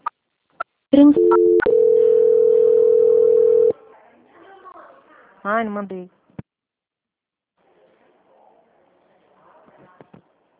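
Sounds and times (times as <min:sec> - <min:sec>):
speech: 0:01.0 - 0:01.6, 0:05.4 - 0:06.2
telephone line tone while a call is transferred: 0:01.1 - 0:03.8.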